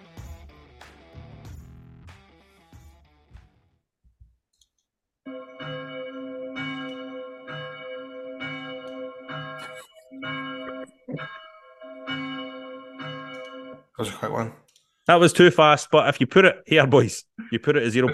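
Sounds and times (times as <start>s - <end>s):
bell tolling for a ten-bell salute: 5.3s - 14.0s
speech: 14.0s - 18.1s.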